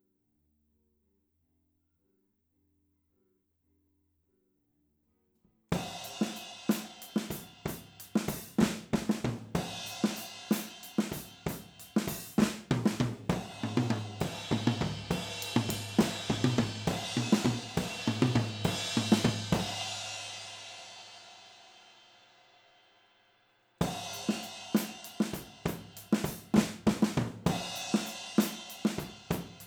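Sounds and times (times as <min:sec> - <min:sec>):
drums recorded with overhead stereo microphones: 0:05.7 - 0:22.8, 0:23.8 - 0:29.6.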